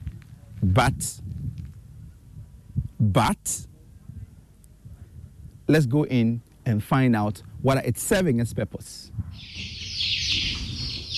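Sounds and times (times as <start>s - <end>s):
low ambient rumble: 0.0s - 11.1s
speech: 0.6s - 1.3s, 3.0s - 3.7s, 5.7s - 9.7s
flock of chickens clucking and peeping in a warehouse: 9.4s - 11.1s.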